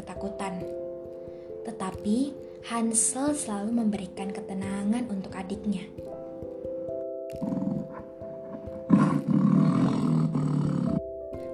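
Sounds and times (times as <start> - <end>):
speech: 0.2 - 0.8, 1.8 - 6.2
tiger roaring: 7.4 - 11.1.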